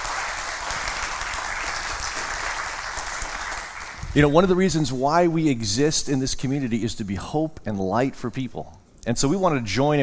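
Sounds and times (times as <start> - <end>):
large audience applause at a music festival: 0.0 - 4.2
speech: 4.2 - 10.0.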